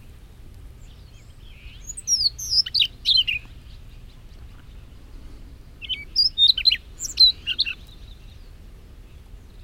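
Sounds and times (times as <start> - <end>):
Siberian rubythroat song of high sharp whistled notes: 0.8 - 4.9, 5.8 - 8.5.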